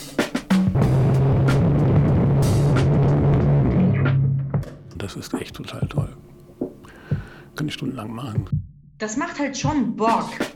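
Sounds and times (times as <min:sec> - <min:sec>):
sharp pops and bursts of static: 0:00.7 - 0:04.0
audio feedback crackling, squealing and hissing: 0:00.8 - 0:04.5
speech: 0:05.2 - 0:06.2, 0:07.8 - 0:10.5.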